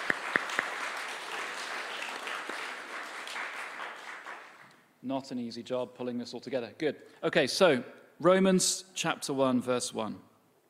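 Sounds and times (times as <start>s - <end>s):
crowd applauding: 0.0s - 4.7s
speech: 5.0s - 10.3s.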